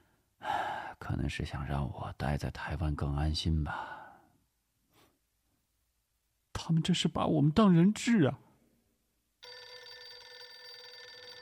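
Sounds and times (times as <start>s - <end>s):
speech: 1.2s - 4.0s, 6.7s - 8.4s
telephone bell ringing with incoming call: 9.4s - 11.4s.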